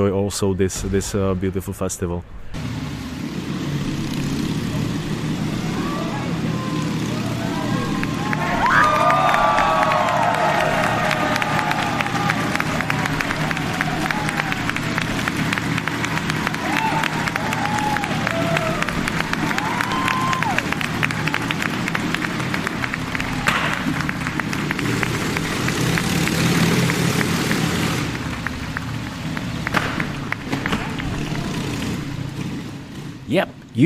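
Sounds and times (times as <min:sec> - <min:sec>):
speech: 0:00.0 - 0:02.8
motorcycle engine droning while riding a wall of death: 0:02.5 - 0:33.8
crowd cheering: 0:04.6 - 0:33.0
people clapping: 0:05.8 - 0:32.2.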